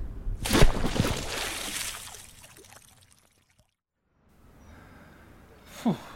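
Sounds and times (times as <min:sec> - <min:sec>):
people jumping and plunging into a river: 0:00.4 - 0:03.7.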